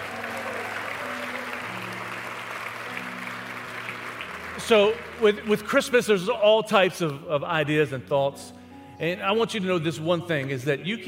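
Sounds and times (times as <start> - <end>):
audience applause: 0.0 - 6.4
speech: 4.6 - 11.0.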